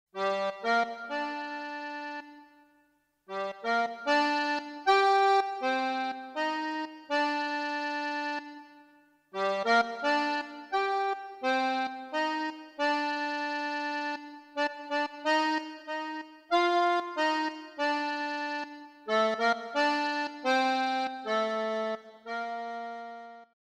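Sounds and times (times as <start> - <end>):
accordion: 0.2 - 23.6.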